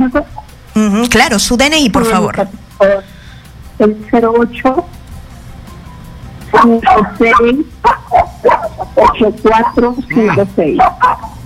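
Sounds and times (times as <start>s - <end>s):
speech: 0.1s - 3.1s, 3.8s - 5.0s, 6.6s - 11.3s
small dog yapping and barking during a phone call: 6.6s - 11.4s.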